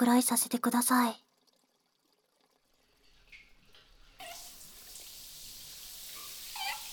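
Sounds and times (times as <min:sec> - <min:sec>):
speech: 0:00.0 - 0:01.2
faint splashes and drips: 0:01.2 - 0:06.9
shower water running: 0:02.8 - 0:06.9.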